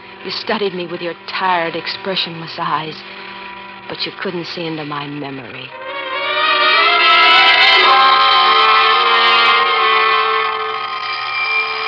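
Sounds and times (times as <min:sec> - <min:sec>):
speech: 0:00.2 - 0:03.2, 0:03.9 - 0:05.8
alarm clock with bright metallic ringing and clattering buzz: 0:05.8 - 0:11.8.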